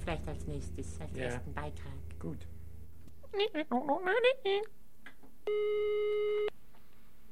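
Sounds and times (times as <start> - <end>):
speech: 0.0 - 2.6, 3.3 - 4.8, 5.5 - 6.6
voiced sound: 0.0 - 4.7
telephone ringback tone while calling a hotline: 5.5 - 6.5.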